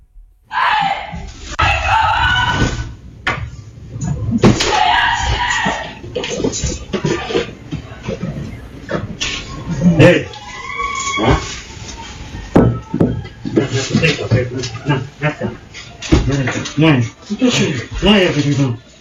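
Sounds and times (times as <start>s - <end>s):
rough noise: 0.4s - 19.0s
woman screaming in panic at home: 0.5s - 2.9s, 10.4s - 11.5s.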